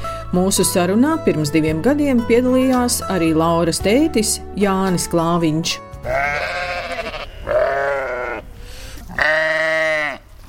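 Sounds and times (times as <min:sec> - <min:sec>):
speech: 0:00.3 - 0:06.7
farmyard noise: 0:04.7 - 0:10.4
sheep bleating: 0:06.0 - 0:10.3.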